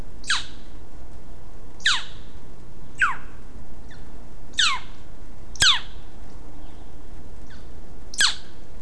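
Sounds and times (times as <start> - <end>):
gatyaskuvik boreal owl calling: 0.2 - 0.7, 1.8 - 2.3, 2.9 - 6.8, 7.5 - 8.7.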